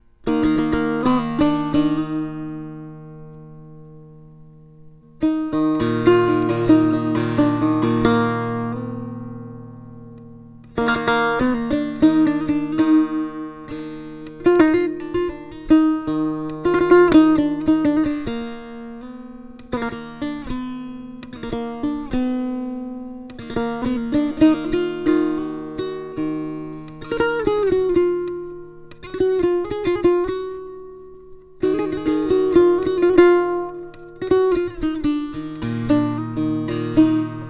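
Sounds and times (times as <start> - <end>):
setar: 0.0 - 37.4.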